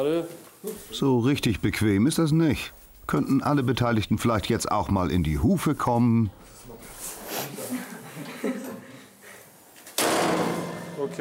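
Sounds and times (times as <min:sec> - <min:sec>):
speech: 0:00.0 - 0:06.4
shuffling: 0:00.2 - 0:08.4
laughter: 0:07.4 - 0:09.3
door being shut: 0:10.0 - 0:10.9.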